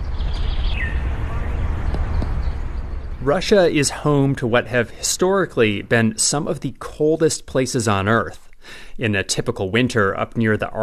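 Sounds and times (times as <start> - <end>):
falling whistled bird call: 0.0 - 2.6
birds chirping in Moscow in winter: 0.0 - 5.8
steady low outdoor rumble: 0.0 - 7.3
speech: 3.2 - 10.8.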